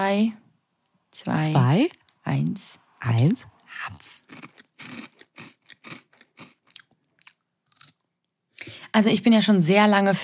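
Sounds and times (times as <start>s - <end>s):
speech: 0.0s - 0.4s, 1.2s - 5.1s, 9.0s - 10.2s
person chewing a cookie: 4.2s - 8.4s.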